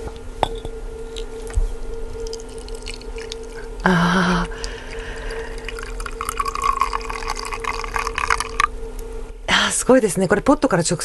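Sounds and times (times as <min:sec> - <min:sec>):
faint constant hum: 0:00.0 - 0:11.0
hot water poured from a ceramic vessel into a teapot holding tea leaves: 0:02.2 - 0:08.8
speech: 0:03.8 - 0:04.5, 0:09.9 - 0:11.0.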